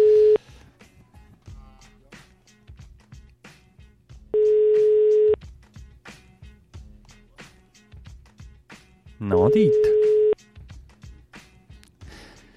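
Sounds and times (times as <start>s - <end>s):
telephone call ringing tone: 0.0s - 0.4s, 4.4s - 5.4s, 9.3s - 10.4s
faint music: 0.0s - 12.5s
speech: 9.3s - 10.0s.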